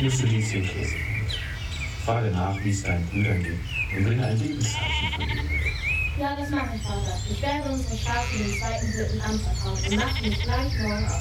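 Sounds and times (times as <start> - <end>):
sheep bleating: 0.0 - 1.0, 4.6 - 5.7, 8.1 - 8.6, 9.7 - 11.0
speech: 0.0 - 1.2, 2.0 - 11.1
faint bird chirps: 0.0 - 11.1.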